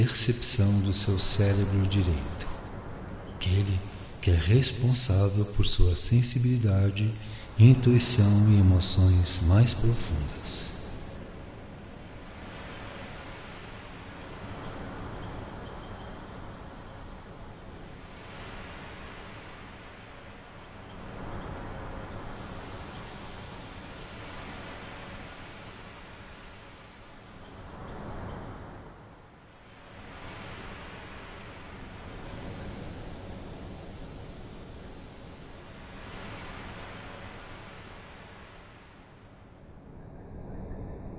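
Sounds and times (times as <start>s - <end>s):
speech: 0.0s - 2.5s, 3.4s - 10.7s
ocean waves: 0.0s - 2.6s, 3.4s - 11.2s.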